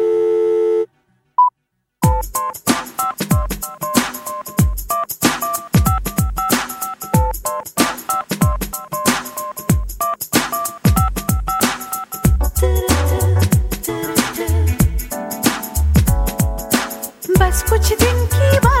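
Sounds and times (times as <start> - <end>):
electronic telephone busy tone after a call is hung up: 0.0 - 1.5
short single beep: 0.0 - 1.5
loud upbeat music with punchy drums: 2.0 - 18.7.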